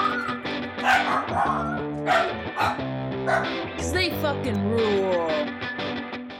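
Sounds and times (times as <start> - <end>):
dachshund yapping: 0.0 - 3.6
speech: 0.8 - 5.6.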